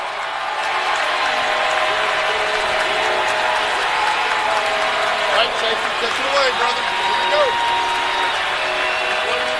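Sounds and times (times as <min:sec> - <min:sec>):
applause: 0:00.0 - 0:09.5
large arena crowd cheering at a championship game: 0:00.0 - 0:09.5
scattered whistles in the crowd: 0:07.0 - 0:09.5.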